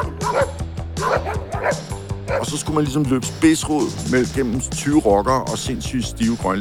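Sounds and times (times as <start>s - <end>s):
dog barking: 0.0s - 2.5s
speech: 2.4s - 6.5s.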